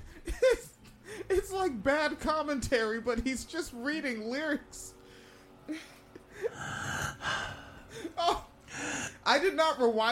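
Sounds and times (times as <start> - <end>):
speech: 1.6 - 5.0, 5.7 - 6.0, 9.3 - 10.1
heavy dramatic breathing: 5.0 - 9.2.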